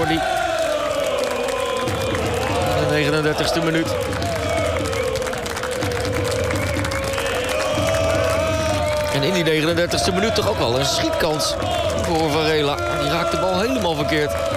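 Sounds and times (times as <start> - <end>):
speech: 0.0 - 0.3, 3.2 - 4.3, 9.2 - 14.5
football commentator talking: 0.0 - 0.4, 2.4 - 4.1, 9.0 - 14.5
away supporters applauding in a football stadium: 0.0 - 14.5.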